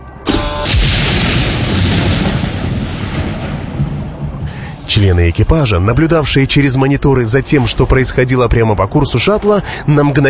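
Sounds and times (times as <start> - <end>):
spaceship weapons firing a salvo: 0.3 - 8.0
speech: 5.0 - 10.2.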